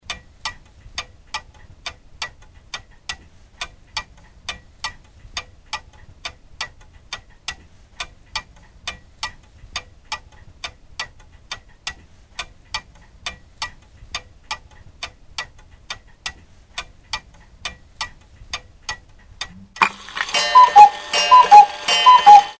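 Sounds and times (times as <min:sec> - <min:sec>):
Huey helicopter timer: 0:19.8 - 0:22.5.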